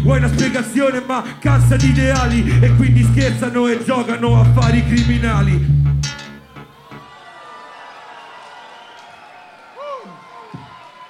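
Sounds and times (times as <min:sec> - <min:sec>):
speech: 0:00.1 - 0:05.9
crowd applauding and cheering: 0:06.4 - 0:11.0
whoop or whistle: 0:06.7 - 0:11.0.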